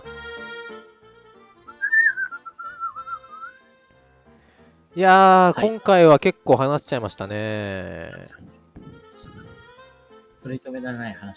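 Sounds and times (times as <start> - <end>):
person whistling a wobbly uneven tune: 1.7 - 3.6
speech: 5.0 - 8.6, 10.4 - 11.3.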